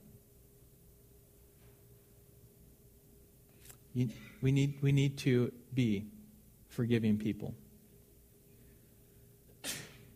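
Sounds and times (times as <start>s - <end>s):
speech: 3.9s - 7.6s
person sneezing: 9.6s - 10.1s.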